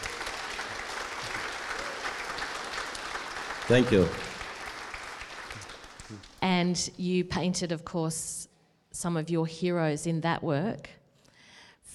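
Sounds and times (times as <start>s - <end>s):
audience applause: 0.0s - 6.4s
speech: 3.7s - 4.2s, 6.1s - 11.0s.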